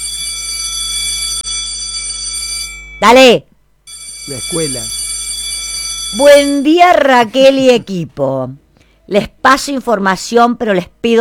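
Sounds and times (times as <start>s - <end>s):
electric school bell buzzer ringing: 0.0s - 3.0s, 3.9s - 6.9s
speech: 3.0s - 3.5s, 4.3s - 5.0s, 6.1s - 11.1s.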